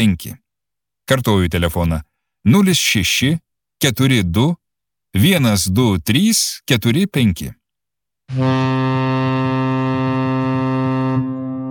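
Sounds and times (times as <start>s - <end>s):
speech: 0.0s - 0.4s, 1.1s - 7.6s, 8.3s - 9.0s
steamship horn blast on the Nemunas river: 8.3s - 11.6s.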